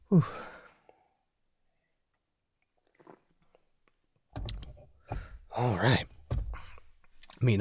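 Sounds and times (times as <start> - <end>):
speech: 0.1 - 0.5, 5.6 - 6.1, 7.4 - 7.5
person sipping coffee: 2.6 - 4.0.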